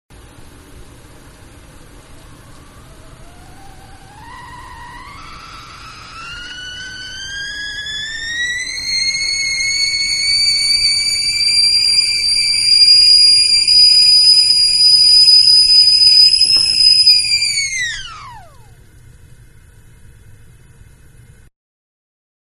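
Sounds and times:
kettle coming to boil in a kitchen: 4.1s - 17.9s.

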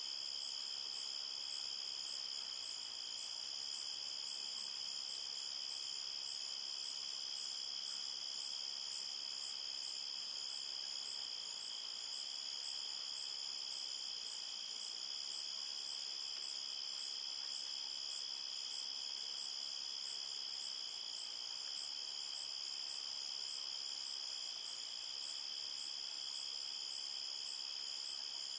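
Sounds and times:
several crickets chirping at night at a forest edge: 0.0s - 28.5s.

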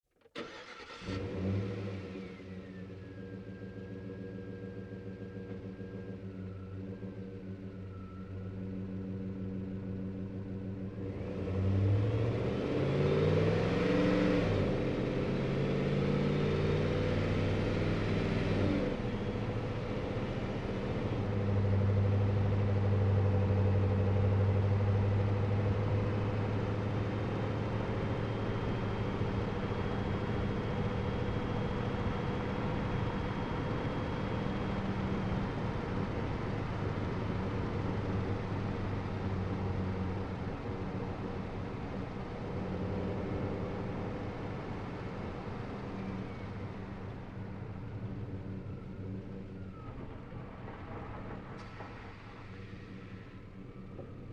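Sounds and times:
truck driving onboard accelerating and decelerating: 0.3s - 54.3s.

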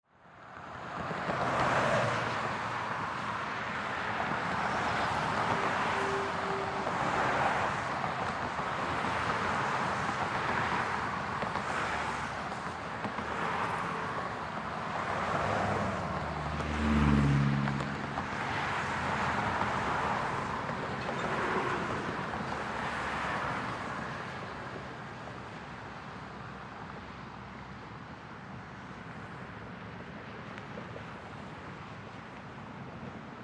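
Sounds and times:
fast traffic pass-bys at a street intersection: 0.8s - 25.2s.

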